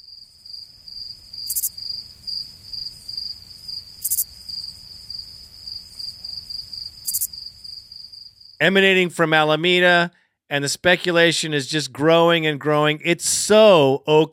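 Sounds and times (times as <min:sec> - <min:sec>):
crickets chirping: 0:00.0 - 0:08.6
speech: 0:08.6 - 0:14.3.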